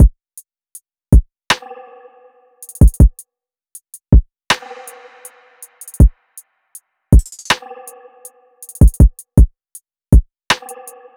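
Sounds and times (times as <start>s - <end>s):
drum loop: 2.6s - 3.2s, 4.1s - 6.1s, 7.1s - 7.6s, 8.6s - 9.4s.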